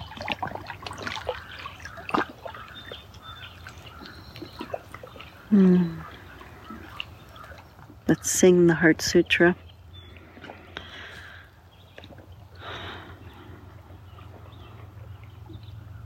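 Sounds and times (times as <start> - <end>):
water trickling and lapping with small splashes and drips: 0.0 - 16.0
speech: 5.5 - 6.0, 8.2 - 9.6.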